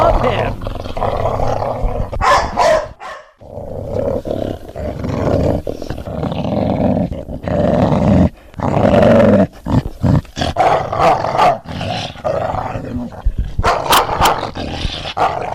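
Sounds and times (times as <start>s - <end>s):
puppy growling deeply: 0.0s - 15.5s
puppy barking sharply: 2.2s - 3.4s, 10.6s - 11.6s, 13.6s - 14.4s, 15.2s - 15.4s.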